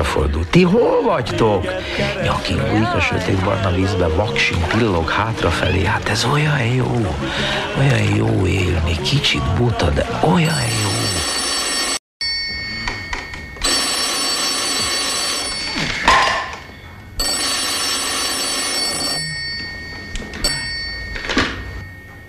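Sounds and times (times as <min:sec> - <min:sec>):
speech: 0:00.0 - 0:10.9
telephone ringing for a requested wake-up call: 0:10.3 - 0:22.2.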